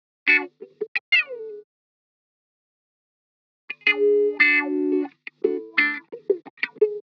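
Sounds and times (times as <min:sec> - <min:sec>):
wah guitar licks in B minor: 0:00.3 - 0:01.6, 0:03.7 - 0:07.0.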